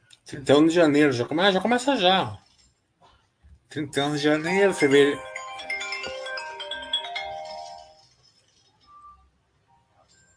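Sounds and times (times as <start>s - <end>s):
speech: 0.3s - 2.4s, 3.7s - 5.7s
phone ringing with a bright chiming melodic tone: 4.2s - 9.3s.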